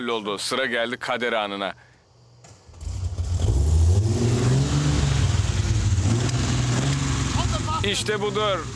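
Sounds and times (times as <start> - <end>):
speech: 0.0 - 1.9, 7.8 - 8.7
carbureted car engine starting and revving: 2.7 - 8.7.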